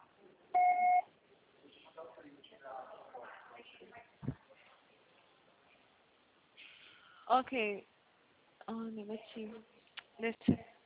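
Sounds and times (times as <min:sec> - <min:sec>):
voicemail recording beep tone: 0:00.6 - 0:01.1
speech: 0:07.3 - 0:07.9, 0:08.7 - 0:10.7.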